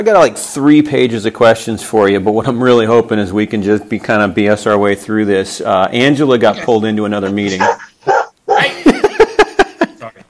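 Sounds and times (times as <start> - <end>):
speech: 0.0 - 7.9
dog whining: 7.5 - 8.7
dog barking in sharp high yaps: 7.6 - 8.8
laughter: 8.5 - 10.2.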